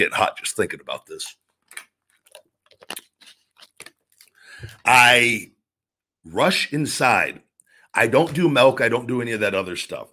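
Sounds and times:
speech: 0.0s - 1.4s, 4.6s - 5.6s, 6.2s - 7.4s, 8.0s - 10.1s
person sipping water from a glass bottle: 1.6s - 4.8s.

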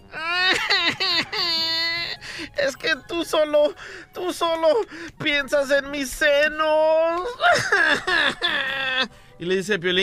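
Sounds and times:
person imitating a woman sobbing: 0.0s - 2.2s, 7.2s - 9.1s
speech: 3.2s - 10.0s.

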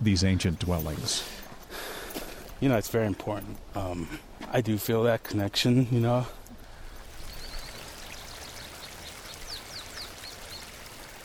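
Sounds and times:
speech: 0.0s - 1.4s, 2.6s - 6.4s
Frijoles Creek flowing over rocks along a canyon bottom in Bandelier: 6.6s - 11.2s
faint high bird chirps in a forest of ponderosa pine, Douglas fir and gambel oak: 7.0s - 11.2s.

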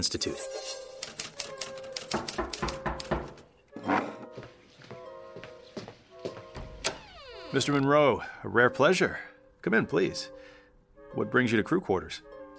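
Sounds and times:
speech: 0.0s - 0.8s, 7.6s - 10.4s, 11.1s - 12.3s
mechanical typewriter keystrokes clattering: 1.0s - 3.4s.

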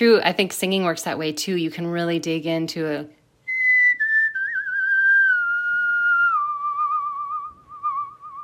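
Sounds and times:
speech: 0.0s - 3.2s
person whistling a slow descending melody: 3.5s - 8.4s.

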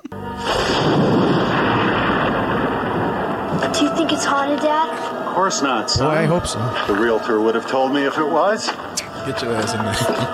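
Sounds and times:
thunder from a thunderstorm at night: 0.4s - 7.8s
speech: 4.2s - 10.3s.

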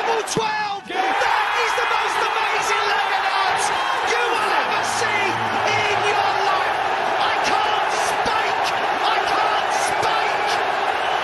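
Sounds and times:
big indoor darts crowd cheering and shouting: 0.0s - 11.2s
speech: 0.2s - 0.8s
darts crowd applause: 1.7s - 11.2s.

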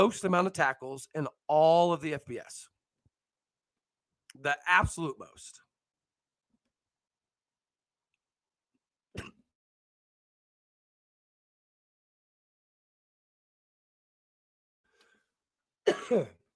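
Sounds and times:
speech: 0.0s - 2.7s, 4.4s - 5.6s, 15.9s - 16.4s
person coughing: 9.2s - 9.5s, 15.8s - 16.5s.

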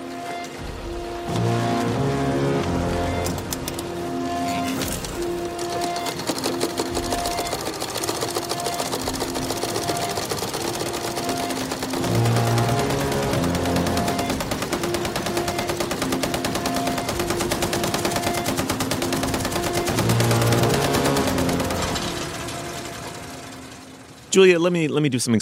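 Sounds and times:
harsh droning musical score: 0.0s - 24.4s
sewing machines whirring and clattering: 0.0s - 24.5s
speech: 24.4s - 25.3s.

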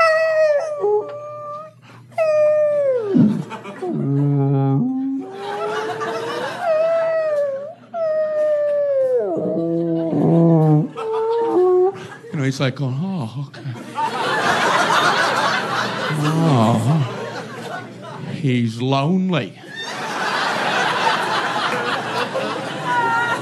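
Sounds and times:
voice imitating whale calls with long wavering moans: 0.0s - 12.1s
laughter: 2.6s - 12.3s, 13.5s - 18.4s, 19.6s - 23.3s
speech: 12.5s - 13.8s, 18.4s - 19.6s.

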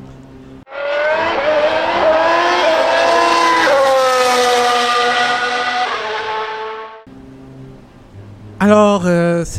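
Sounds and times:
race car engines revving at race start: 0.7s - 8.2s
speech: 8.7s - 9.5s.

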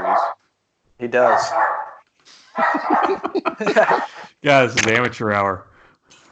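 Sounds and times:
dog barking: 0.0s - 0.4s, 1.2s - 2.0s, 2.6s - 4.2s
speech: 1.0s - 1.7s, 2.6s - 5.7s
laughter: 2.6s - 5.4s.

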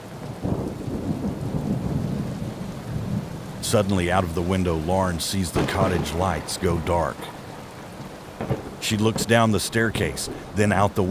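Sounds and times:
heavy rain in a gale: 0.0s - 11.0s
speech: 3.6s - 7.4s, 8.8s - 11.0s.

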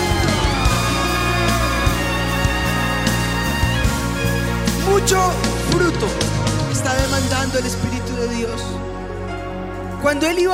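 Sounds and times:
audience clapping and cheering with whoops and shouts: 0.0s - 4.8s
sustained keyboard or organ chords: 0.0s - 10.0s
speech: 7.1s - 8.9s, 10.0s - 10.5s.

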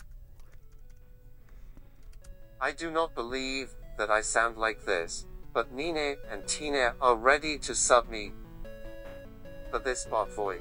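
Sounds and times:
typing on a computer keyboard: 0.0s - 1.1s
speech: 2.6s - 8.4s, 9.7s - 10.5s.

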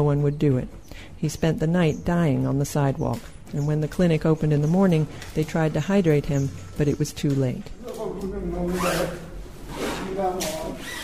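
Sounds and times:
speech: 0.0s - 9.2s
heavy zipper of a body bag pulled closed by health workers: 8.6s - 11.0s.

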